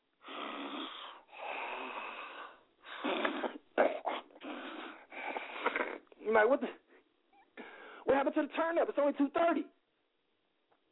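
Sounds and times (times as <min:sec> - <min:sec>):
voice imitating people asleep in a car snoring: 0:00.2 - 0:02.4, 0:04.4 - 0:06.1
choppy snorting breaths: 0:00.2 - 0:06.2
speech: 0:06.3 - 0:06.8, 0:08.2 - 0:09.8.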